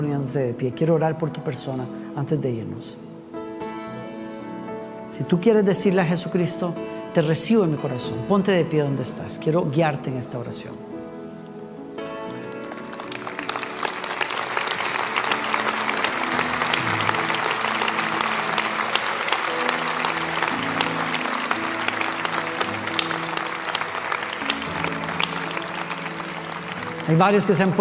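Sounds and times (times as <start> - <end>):
speech: 0.0 - 3.1, 5.2 - 10.9, 27.1 - 27.7
sustained music playing: 0.0 - 27.7
audience applause at a religious worship service after an altar call: 12.2 - 27.7.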